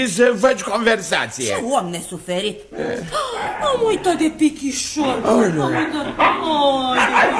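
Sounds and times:
speech: 0.0 - 7.3
small dog barking: 5.7 - 7.3.

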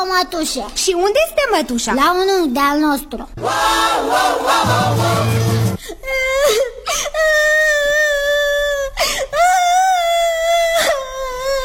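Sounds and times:
speech: 0.1 - 7.5
crowd noise: 3.4 - 5.8
small child wailing with gasping breaths: 6.0 - 11.6.

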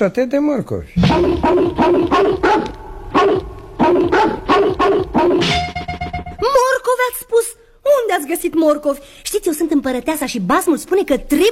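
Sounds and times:
speech: 0.0 - 2.8, 6.4 - 11.5
dog barking: 1.1 - 5.4.

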